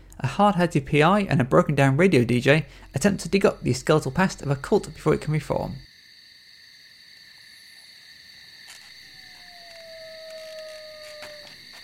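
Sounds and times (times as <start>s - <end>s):
shrill chorus of crickets at night: 0.0s - 11.8s
speech: 0.2s - 5.9s
coyote howling at night: 8.7s - 11.8s.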